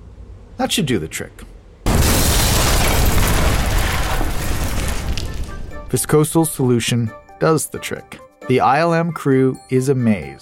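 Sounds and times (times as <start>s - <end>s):
speech: 0.6s - 1.5s, 5.9s - 10.4s
loud roaring blast from magnesium-gasoline explosives set off electronically by squibs: 1.9s - 5.8s.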